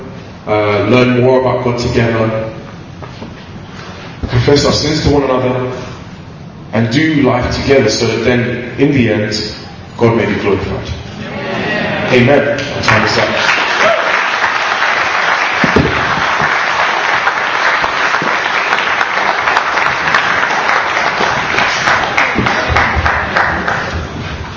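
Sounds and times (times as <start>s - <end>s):
speech: 0.4s - 2.6s, 4.5s - 5.9s, 6.7s - 11.0s, 12.1s - 13.6s
audience applauding: 12.9s - 24.2s.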